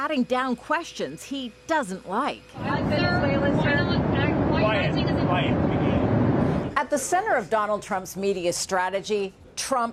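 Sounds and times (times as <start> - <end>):
speech: 0.0 - 3.9, 4.7 - 5.9, 6.8 - 9.9
several people talking indistinctly during a press conference: 0.0 - 9.9
steady loud jet engine roar inside an airplane cabin: 2.6 - 6.8.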